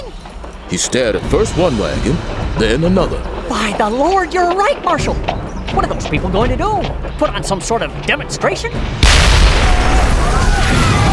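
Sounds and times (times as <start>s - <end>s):
speech: 0.7s - 9.8s
huge explosion rumbling on a mining town's main street: 8.8s - 11.1s.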